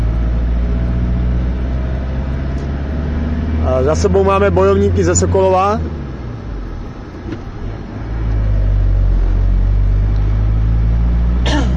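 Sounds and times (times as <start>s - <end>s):
Chrysler car engine purring while driving: 0.0s - 11.7s
speech: 3.8s - 6.0s.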